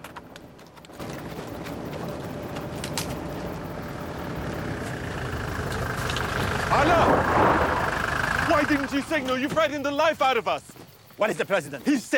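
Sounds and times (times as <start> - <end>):
speeding car engine roaring: 1.4 - 9.4
speech: 8.7 - 12.1.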